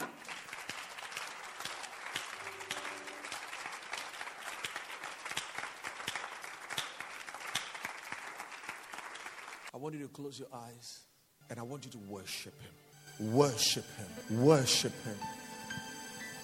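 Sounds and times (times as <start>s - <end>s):
church audience clapping during a sermon: 0.0s - 9.7s
speech: 9.8s - 15.4s.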